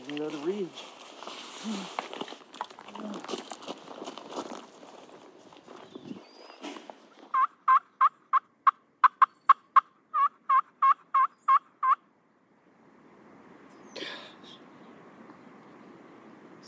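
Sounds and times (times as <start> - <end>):
quiet rustling noise: 0.0 - 7.4
turkey gobbling in a rapid rattling burst: 7.3 - 12.0.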